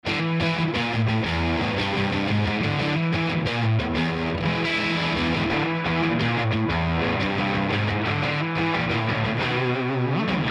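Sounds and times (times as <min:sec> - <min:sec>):
guitar through API 550A EQ: 0:00.0 - 0:10.4.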